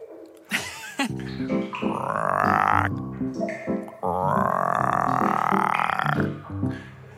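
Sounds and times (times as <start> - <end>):
laughter: 0.5 - 1.3
deliberate burps made by pumping air into the mouth: 1.0 - 3.0, 3.9 - 6.4
speech: 1.0 - 5.0.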